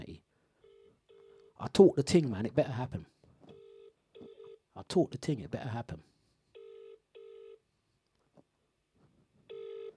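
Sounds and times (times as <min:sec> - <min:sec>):
speech: 0:01.6 - 0:03.2, 0:04.9 - 0:06.1
phone outgoing ringback tone through a handset speaker: 0:03.6 - 0:04.6, 0:06.6 - 0:07.6, 0:09.5 - 0:09.9.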